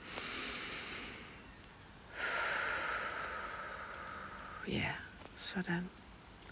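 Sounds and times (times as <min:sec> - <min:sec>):
breathy exhale out the mouth: 0:00.0 - 0:01.4, 0:02.1 - 0:04.7
soft airy inhale through the nose: 0:00.0 - 0:01.4, 0:02.1 - 0:04.7
speech: 0:04.7 - 0:06.0.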